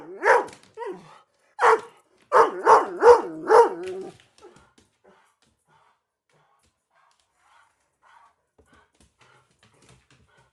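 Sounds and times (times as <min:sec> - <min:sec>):
German Shorthaired Pointer barking in quick bursts: 0:00.0 - 0:01.0, 0:01.6 - 0:04.1.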